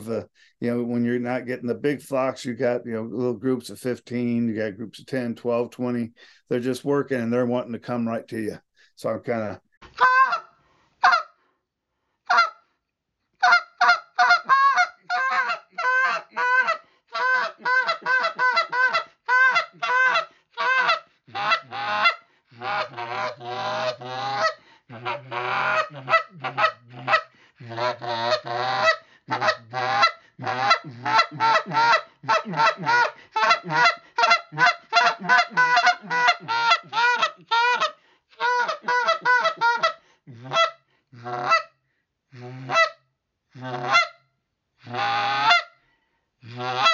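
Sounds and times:
speech: 0.0s - 10.4s
raspy clucks blown on a goose call during Canada goose hunting: 10.0s - 11.4s, 12.3s - 12.6s, 13.4s - 41.8s, 42.5s - 43.0s, 43.6s - 44.2s, 44.8s - 45.8s, 46.5s - 46.9s.

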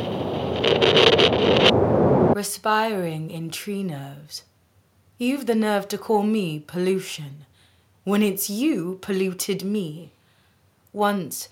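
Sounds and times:
rushing wind: 0.0s - 2.4s
speech: 2.4s - 4.5s, 5.2s - 10.2s, 10.9s - 11.4s.

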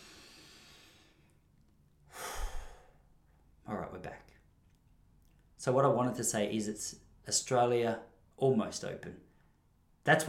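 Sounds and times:
hiss: 0.0s - 1.1s
deep breath: 0.0s - 1.4s, 2.1s - 3.2s
speech: 5.6s - 9.3s, 10.0s - 10.2s.

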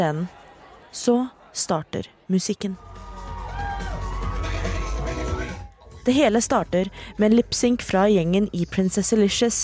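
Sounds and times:
speech: 0.0s - 2.9s, 6.0s - 9.6s
drag show audience squealing and cheering in a basement venue: 2.8s - 6.0s.

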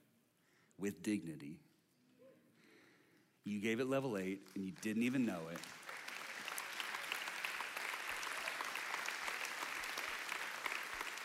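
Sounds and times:
speech: 0.8s - 1.7s, 3.4s - 5.8s
large audience applause in a church: 4.4s - 11.2s.

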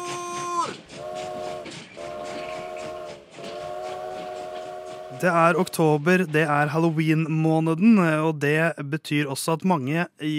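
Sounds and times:
train whistle dropping in pitch: 0.0s - 5.7s
departing train rumbling: 0.0s - 8.9s
speech: 5.2s - 10.3s.

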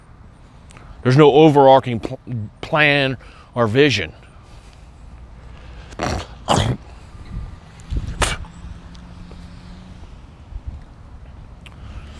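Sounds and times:
quiet noise: 0.0s - 12.1s
speech: 1.0s - 4.2s
man clearing his throat: 6.0s - 7.1s.

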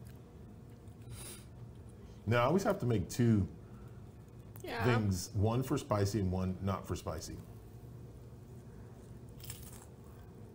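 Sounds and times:
low steady hum: 0.0s - 10.5s
speech: 2.3s - 3.6s, 4.7s - 7.5s
person biting into a cracker: 9.3s - 10.2s.

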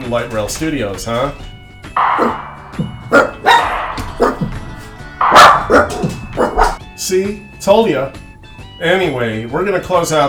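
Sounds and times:
speech: 0.1s - 2.4s, 7.1s - 10.2s
dogs barking: 1.4s - 6.8s.

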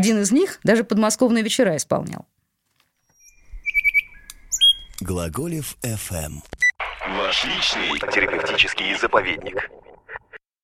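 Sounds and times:
speech: 0.0s - 2.4s, 5.0s - 9.9s
nightingale singing: 3.0s - 5.1s.

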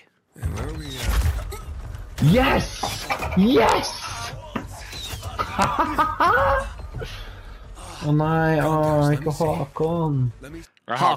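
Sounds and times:
door creaking open: 0.4s - 5.6s
speech: 2.2s - 4.0s, 5.6s - 7.2s, 8.0s - 11.1s
laughter: 4.0s - 7.0s.

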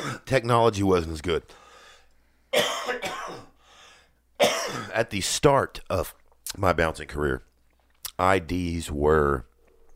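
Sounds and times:
person coughing: 0.0s - 0.3s, 2.6s - 3.6s, 4.4s - 5.0s
speech: 0.2s - 1.6s, 4.9s - 7.5s, 8.2s - 9.5s
throat clearing: 2.6s - 3.5s.

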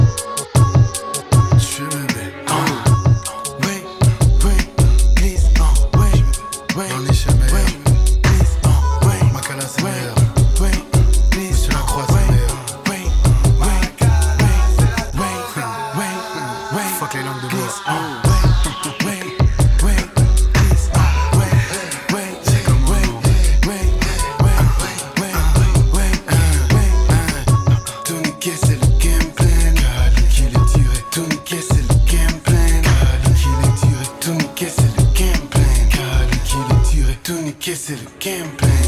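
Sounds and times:
rap track with heavy punchy bass and rapped vocals: 0.0s - 38.8s.

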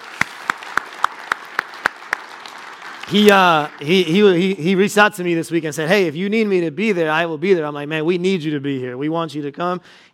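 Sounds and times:
audience applause at an evening Christmas gathering: 0.0s - 4.6s
speech: 3.1s - 10.1s.

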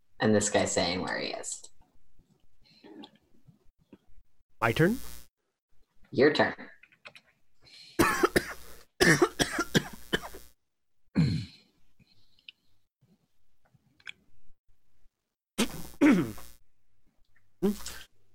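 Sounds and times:
speech: 0.2s - 1.7s, 4.6s - 5.2s, 6.1s - 6.7s, 9.0s - 9.3s, 17.6s - 17.9s
harsh coughing from a player at a tabletop role-playing game session: 8.0s - 10.4s, 15.6s - 16.4s.

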